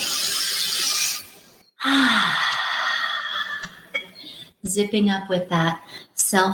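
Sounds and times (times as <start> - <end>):
deep inhale during a guided breathing exercise: 1.8 - 3.6
speech: 4.8 - 6.5.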